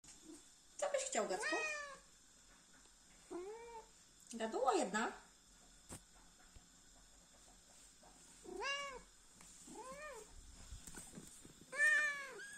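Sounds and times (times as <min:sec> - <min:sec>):
speech: 0:01.1 - 0:01.8, 0:04.3 - 0:05.2
sphynx cat meowing: 0:01.4 - 0:02.0, 0:08.5 - 0:09.0, 0:11.7 - 0:12.5.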